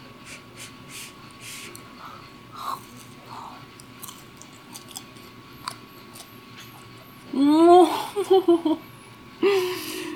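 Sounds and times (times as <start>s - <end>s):
faint steady hum: 0.0s - 10.1s
biting and chewing freshly grilled mochi coated in chunky red bean paste: 2.5s - 7.1s
speech: 8.3s - 8.9s.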